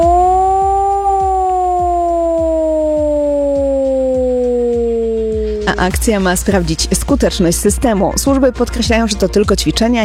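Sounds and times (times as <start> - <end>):
civil defense air raid siren wailing: 0.0 - 6.7
speech: 5.8 - 10.0.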